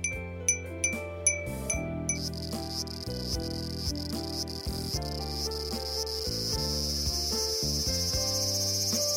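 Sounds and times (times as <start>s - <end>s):
bright tinkling chime strikes: 0.0s - 3.4s
cicadas singing in summer: 2.1s - 9.1s.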